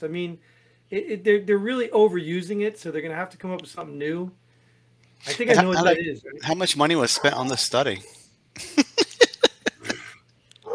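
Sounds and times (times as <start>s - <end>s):
speech: 0.0s - 4.4s, 5.2s - 8.8s
dog barking: 7.0s - 7.5s
laughter: 8.6s - 10.2s.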